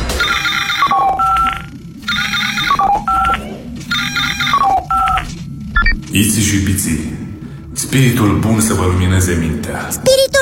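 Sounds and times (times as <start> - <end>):
electronic incoming-call ringtone aboard a spaceship: 0.2 - 6.0
speech: 6.1 - 10.2.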